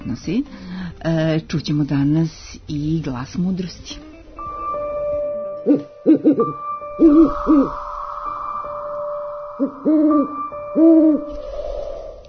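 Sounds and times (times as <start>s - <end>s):
speech: 0.1s - 4.1s, 5.6s - 7.9s, 9.6s - 11.6s
owl hooting: 5.7s - 12.2s.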